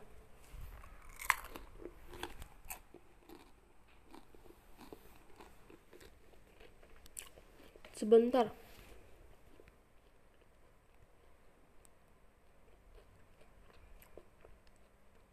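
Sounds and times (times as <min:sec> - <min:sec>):
crunchy food being bitten and chewed: 0:00.7 - 0:08.0, 0:09.2 - 0:15.3
speech: 0:08.0 - 0:08.6.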